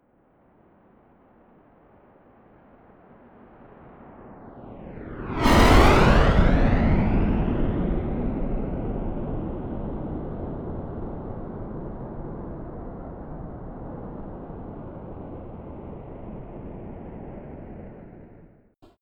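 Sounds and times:
Rafale military jet fast close flyby: 0:04.5 - 0:10.1.

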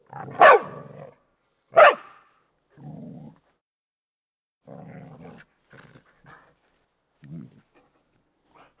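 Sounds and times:
bardino mix dog growling: 0:00.0 - 0:01.2, 0:02.8 - 0:03.5, 0:04.7 - 0:06.4
bardino mix dog barking: 0:00.2 - 0:01.0, 0:01.7 - 0:02.3.

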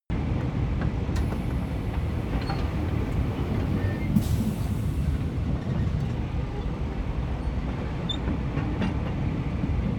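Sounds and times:
train locomotive driving slowly: 0:00.2 - 0:09.9.

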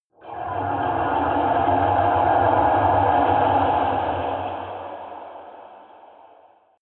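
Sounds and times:
underwater rumble: 0:00.2 - 0:06.7.

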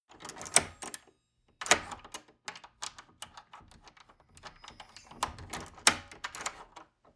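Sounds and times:
old lock being handled: 0:00.1 - 0:07.1
old wooden door: 0:01.6 - 0:07.1.

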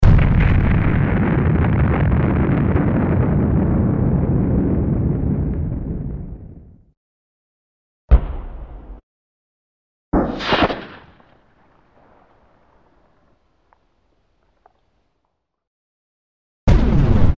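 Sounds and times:
explosions: 0:00.0 - 0:06.9, 0:08.1 - 0:09.0, 0:10.2 - 0:13.2, 0:16.7 - 0:17.3.

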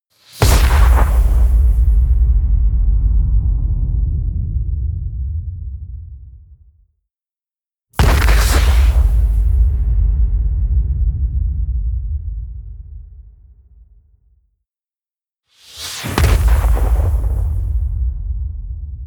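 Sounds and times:
large fire spell impact: 0:00.4 - 0:06.2, 0:08.0 - 0:13.5, 0:16.2 - 0:19.0.

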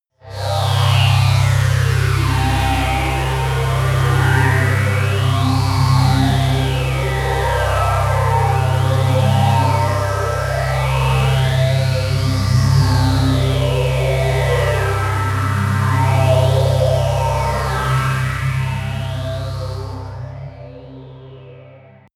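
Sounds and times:
robotic synth pad sweep: 0:00.2 - 0:22.1.

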